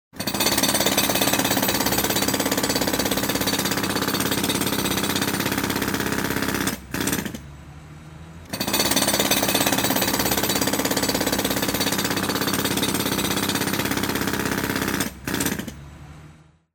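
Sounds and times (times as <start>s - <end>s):
jackhammer: 0.1s - 7.5s, 8.5s - 15.8s.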